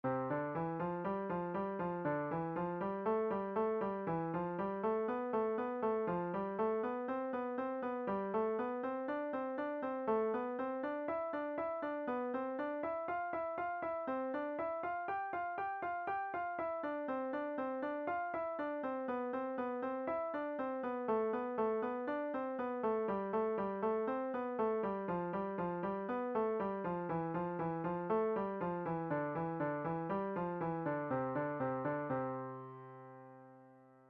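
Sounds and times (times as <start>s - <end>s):
piano playing second intervals: 0.0s - 34.0s.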